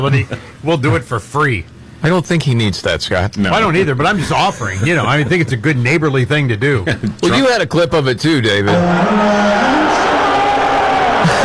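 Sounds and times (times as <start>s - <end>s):
speech: 0.0s - 10.0s
large crowd cheering with whoops: 8.7s - 11.4s.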